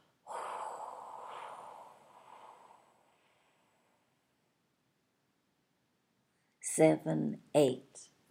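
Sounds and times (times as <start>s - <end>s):
slow breath blown out during a breathing exercise: 0.0s - 4.4s
speech: 6.8s - 8.1s.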